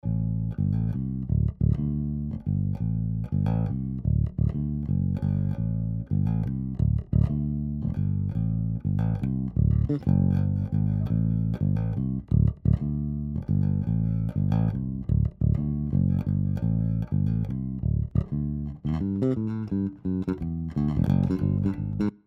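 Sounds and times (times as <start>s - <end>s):
tight bass: 0.0s - 22.2s.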